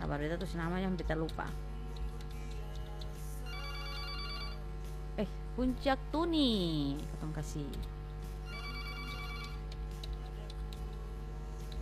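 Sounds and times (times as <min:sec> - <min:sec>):
steady low hum: 0:00.0 - 0:11.8
speech: 0:00.1 - 0:01.7, 0:05.2 - 0:08.0
telephone ringing for an incoming call with an electronic tone: 0:03.5 - 0:04.6, 0:08.5 - 0:09.6.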